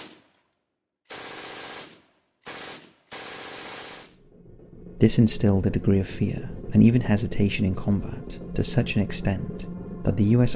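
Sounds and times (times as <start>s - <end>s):
German MG42 machine gun firing bursts: 0.0s - 0.4s, 1.1s - 4.2s
speech: 5.0s - 10.5s.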